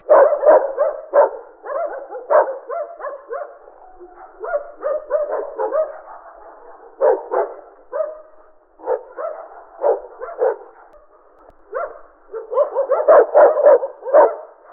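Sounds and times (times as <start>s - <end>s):
pack of various dogs barking: 0.0s - 14.7s.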